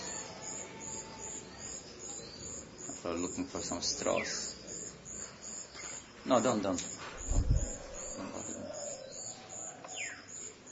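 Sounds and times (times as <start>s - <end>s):
faint outdoor hum: 0.0s - 10.6s
speech: 3.0s - 4.6s, 6.3s - 7.5s
low pigeon-like cooing of birds: 7.2s - 10.1s.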